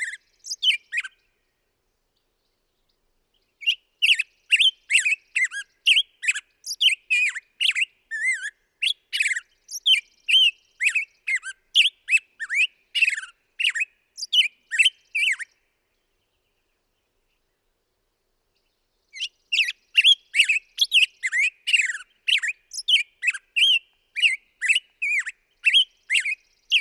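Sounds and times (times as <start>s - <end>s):
black-headed grosbeak singing: 0.0s - 1.2s, 3.6s - 15.6s, 19.1s - 26.7s.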